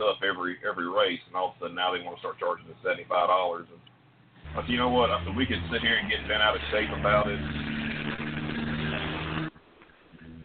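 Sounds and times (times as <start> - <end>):
speech: 0.0 - 7.8
background rumble: 0.0 - 10.4
truck engine roaring as it passes: 4.4 - 9.6.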